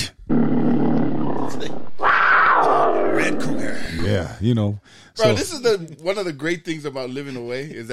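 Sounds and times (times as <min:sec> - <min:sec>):
human voice imitating a tiger roar: 0:00.0 - 0:04.2
harsh growling: 0:00.0 - 0:04.4
speech: 0:04.3 - 0:07.9.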